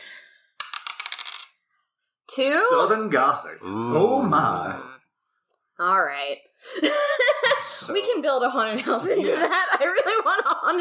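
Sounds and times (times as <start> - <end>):
dice clattering across a hard surface: 0.6 - 1.6
speech: 2.4 - 4.9, 5.8 - 10.8
laughter: 8.8 - 10.8.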